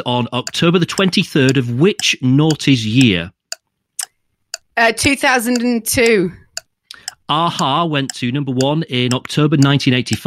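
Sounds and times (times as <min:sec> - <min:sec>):
speech: 0:00.0 - 0:03.4, 0:04.8 - 0:06.4, 0:07.3 - 0:10.2
quiz clock ticking: 0:00.0 - 0:10.2.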